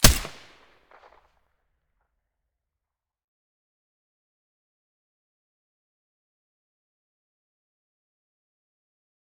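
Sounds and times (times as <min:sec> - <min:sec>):
MDR rifle with silencer firing: 0:00.0 - 0:00.7.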